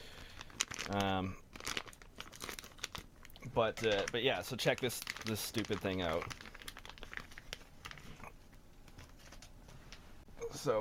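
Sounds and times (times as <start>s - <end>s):
plastic packaging crinkling while being opened: 0.0s - 8.3s
speech: 0.9s - 1.4s, 3.5s - 6.4s, 10.6s - 10.8s.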